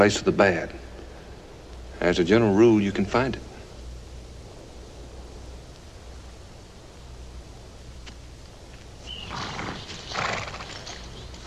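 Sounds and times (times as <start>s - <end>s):
speech: 0.0s - 0.8s, 2.0s - 3.5s
horse hooves clopping and shuffling: 8.0s - 11.4s
horse giving breathy snorts or soft whinnies: 9.2s - 11.2s.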